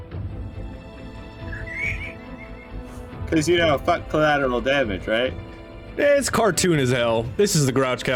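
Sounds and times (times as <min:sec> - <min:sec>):
person doing a vocal impression of a horse neighing: 0:01.5 - 0:02.8
speech: 0:03.3 - 0:08.1.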